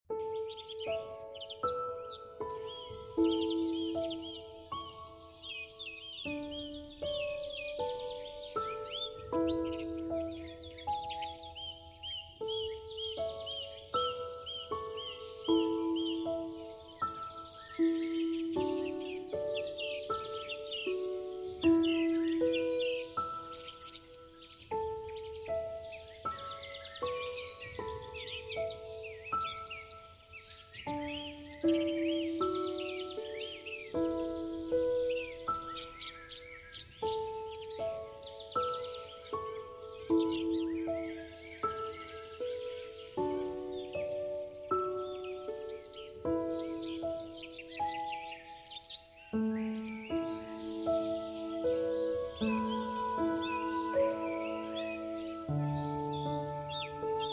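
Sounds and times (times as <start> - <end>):
birds: 0.1 - 57.3
relaxing piano music: 0.1 - 57.3.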